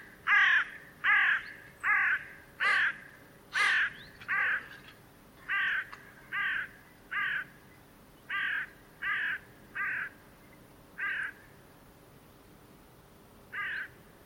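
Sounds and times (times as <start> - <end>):
bird repeating rough nasal caw calls: 0.0 - 7.6, 8.3 - 10.2, 11.0 - 11.6, 13.5 - 14.0.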